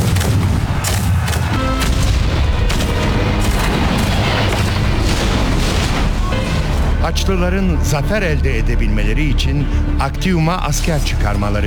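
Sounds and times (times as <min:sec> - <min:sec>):
artillery cannon fire from Turkish troops holding the fortress at Actium: 0:00.0 - 0:06.9
speech: 0:07.2 - 0:11.6.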